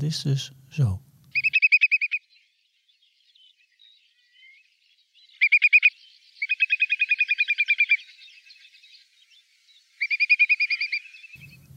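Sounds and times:
speech: 0:00.0 - 0:01.1
whimbrel calling in rippling whistled trills: 0:01.3 - 0:02.3, 0:05.3 - 0:08.3, 0:09.9 - 0:11.7.

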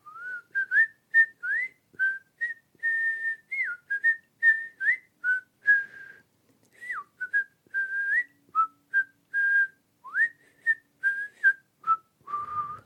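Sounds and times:
grandmother whistling a lively cheerful melody: 0:00.0 - 0:06.2, 0:06.8 - 0:12.8.

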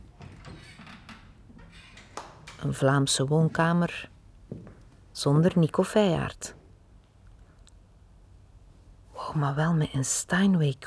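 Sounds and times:
sharp door click: 0:00.0 - 0:03.1
door being opened with soft clunks and scraping: 0:00.0 - 0:05.1
speech: 0:02.6 - 0:04.1, 0:05.2 - 0:06.6, 0:09.4 - 0:10.8.

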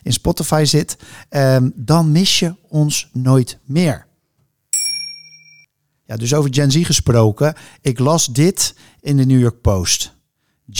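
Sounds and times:
speech: 0:00.1 - 0:04.1, 0:06.1 - 0:10.7
bright metallic bell ding sound effect: 0:04.8 - 0:05.7.

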